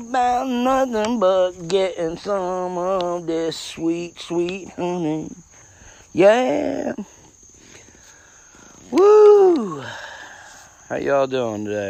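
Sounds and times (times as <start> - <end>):
speech: 0.0 - 5.5, 6.1 - 7.2, 8.9 - 10.1, 10.9 - 11.8
crickets and cicadas chirping outdoors: 0.0 - 11.8
loud drawn-out human vocal sound: 8.9 - 10.2.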